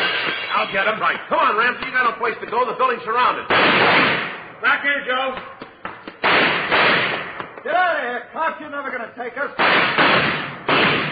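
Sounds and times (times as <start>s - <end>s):
speech: 0.6s - 5.5s, 7.6s - 10.4s
gunshots during a police standoff at a surrounded building: 3.4s - 4.6s, 6.1s - 7.6s, 9.6s - 11.1s
man shouting: 7.7s - 8.6s.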